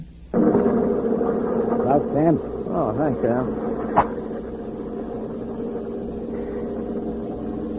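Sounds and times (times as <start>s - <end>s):
armored truck engine droning inside the cab: 0.4s - 7.7s
speech: 1.9s - 4.2s.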